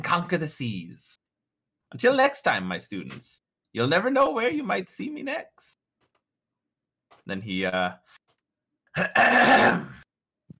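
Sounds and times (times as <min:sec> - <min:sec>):
speech: 0:00.0 - 0:01.2, 0:01.9 - 0:05.8, 0:07.2 - 0:08.1, 0:09.0 - 0:10.0
man clearing his throat: 0:09.0 - 0:10.0.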